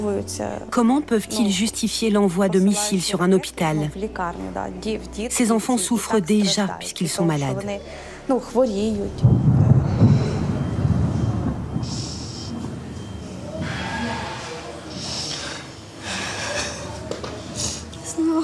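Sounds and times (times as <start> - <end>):
speech: 0.0 - 9.5
loud deep rumble of thunder: 8.6 - 15.1
faint higher noises: 8.7 - 18.4
short breathy vocal sound: 9.8 - 10.8, 11.8 - 18.0.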